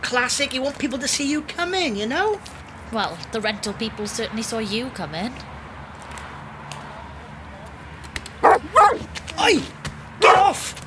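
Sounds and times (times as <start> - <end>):
speech: 0.0 - 5.5, 9.5 - 9.8
Great Dane barking: 8.4 - 9.1, 10.2 - 10.6.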